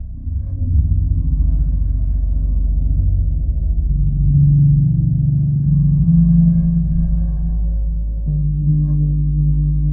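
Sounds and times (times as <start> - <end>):
deep looping ambience: 0.0 - 9.9.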